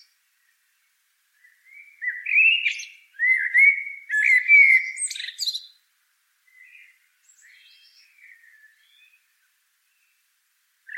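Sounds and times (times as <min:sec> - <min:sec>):
common blackbird Turdus merula singing fluted whistled phrases: 0:01.4 - 0:05.8, 0:06.4 - 0:09.3.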